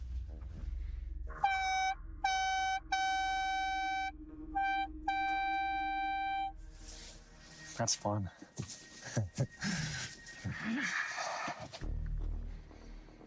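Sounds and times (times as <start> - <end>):
low rumble: 0.0 - 6.8
loud high-pitched air horn blasts: 1.3 - 6.6
speech: 7.8 - 12.0.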